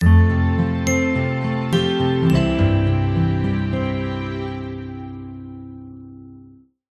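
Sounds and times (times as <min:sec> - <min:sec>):
glockenspiel: 0:00.0 - 0:04.8
strings: 0:00.0 - 0:06.3
picked guitar: 0:00.0 - 0:06.6
warm sincere piano: 0:00.0 - 0:06.6
bass: 0:00.0 - 0:06.7.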